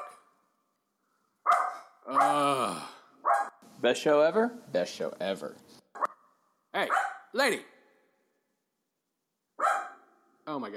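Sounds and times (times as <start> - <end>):
dog barking at a door: 0.0 - 0.2, 1.4 - 2.4, 3.2 - 3.6, 6.8 - 7.3, 9.6 - 10.1
speech: 3.8 - 5.7, 7.4 - 7.7, 10.6 - 10.7.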